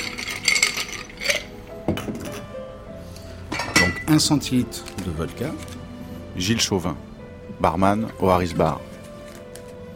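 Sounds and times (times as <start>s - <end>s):
ice cubes clinking into a cocktail mixing glass in a bar: 0.0s - 1.6s
speech: 4.1s - 5.8s, 6.4s - 8.9s.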